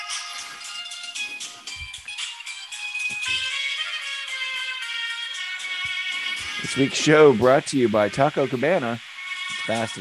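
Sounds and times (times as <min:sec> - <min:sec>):
electronic phone ringtone melody: 0:00.0 - 0:07.4
speech: 0:06.6 - 0:10.0.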